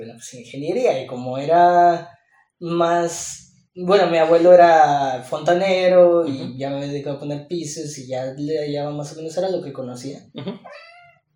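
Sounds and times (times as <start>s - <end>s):
speech: 0.0s - 10.9s
cat meowing: 10.6s - 11.2s.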